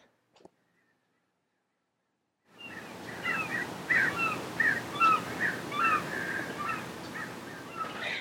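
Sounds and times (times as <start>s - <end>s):
steady outdoor noise: 2.5s - 8.2s
seagulls calling outdoors: 2.6s - 8.2s.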